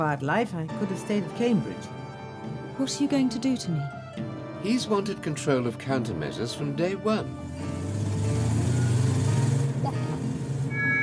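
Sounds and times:
speech: 0.0s - 7.8s
car engine droning while driving: 7.1s - 11.0s.

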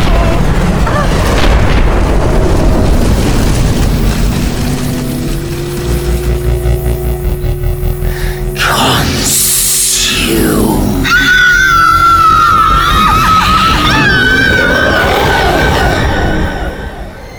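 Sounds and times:
sci-fi craft crashing roaring rumble: 0.0s - 17.3s
steady droning hum with sustained tones: 3.3s - 13.6s.

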